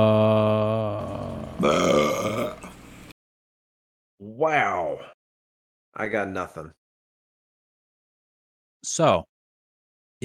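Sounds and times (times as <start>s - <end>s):
long loud belch: 0.0s - 2.8s
speech: 4.4s - 5.1s, 6.0s - 6.8s, 8.8s - 9.3s.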